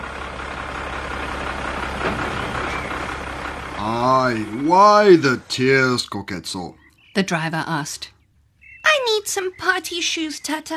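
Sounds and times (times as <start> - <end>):
rubbish truck clatter: 0.0 - 3.8
heavy rubbish truck engine rumbling and idling: 0.0 - 10.7
speech: 3.8 - 8.2, 9.0 - 10.7.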